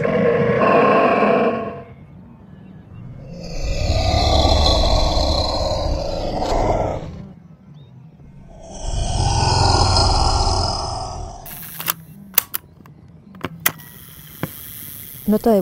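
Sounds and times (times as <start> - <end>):
glyptodont grunting and roaring to its companions: 0.0 - 1.9, 3.1 - 7.4, 8.3 - 11.5
speech: 15.4 - 15.5.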